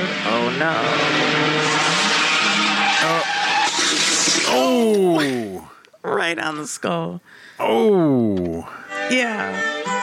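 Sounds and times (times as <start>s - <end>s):
truck braking hard with tires skidding: 0.0s - 5.3s
speech: 0.5s - 1.7s, 3.0s - 3.5s, 4.4s - 10.0s.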